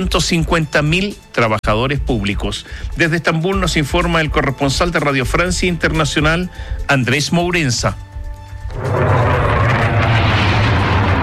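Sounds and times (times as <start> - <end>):
speech: 0.0 - 8.1
bomb blast as an F-16 fighter jet strikes the presidential palace in Ankara: 8.6 - 11.2.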